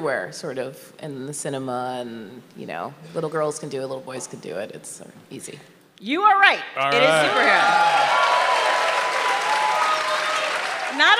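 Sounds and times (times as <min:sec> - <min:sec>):
speech: 0:00.0 - 0:08.2, 0:11.0 - 0:11.1
audience applause: 0:07.0 - 0:11.1.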